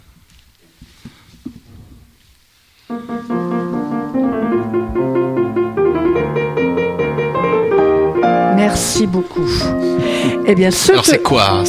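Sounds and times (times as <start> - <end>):
faint shuffling: 0.0 - 5.6, 7.7 - 11.6
speech: 2.9 - 3.4, 8.7 - 11.6
classical piano sonata: 2.9 - 11.6.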